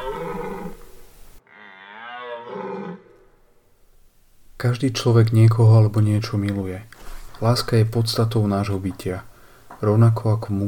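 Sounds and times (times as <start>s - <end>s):
rutting deer stag roaring: 0.0s - 3.3s
speech: 4.6s - 10.6s.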